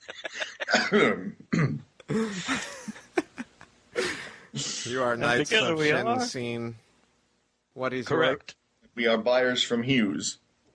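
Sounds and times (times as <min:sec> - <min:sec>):
laughter: 0:00.0 - 0:01.0, 0:02.1 - 0:04.7
several people coughing: 0:00.4 - 0:02.9
throat clearing: 0:00.7 - 0:02.6
speech: 0:00.9 - 0:02.7, 0:04.9 - 0:06.8, 0:07.8 - 0:10.4.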